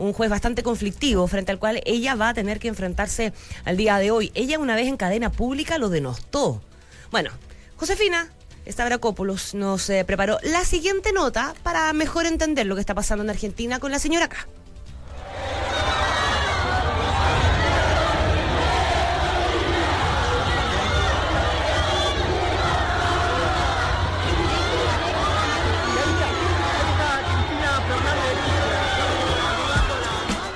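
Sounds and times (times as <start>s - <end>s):
speech: 0.1s - 14.6s
large excited crowd of supporters shouting and cheering: 15.0s - 30.5s.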